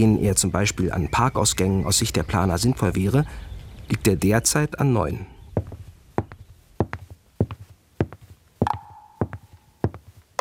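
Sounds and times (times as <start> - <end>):
speech: 0.0 - 5.3
footsteps: 5.5 - 10.3.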